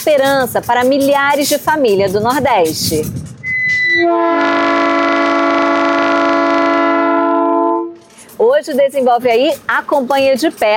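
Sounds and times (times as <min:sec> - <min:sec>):
speech: 0:00.0 - 0:03.3, 0:03.9 - 0:05.7, 0:08.4 - 0:10.7
freight train horn multi-tone blast: 0:03.5 - 0:08.1.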